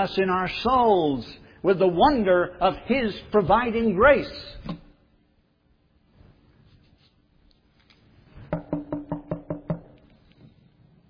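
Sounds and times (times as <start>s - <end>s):
speech: 0.0s - 4.8s
sharp knocks on a door: 8.5s - 10.0s.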